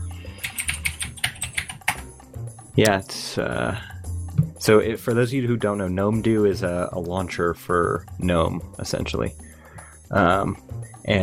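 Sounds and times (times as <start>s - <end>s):
typing on a mechanical keyboard: 0.4s - 2.0s
speech: 2.8s - 3.9s, 4.6s - 9.4s, 10.1s - 11.2s.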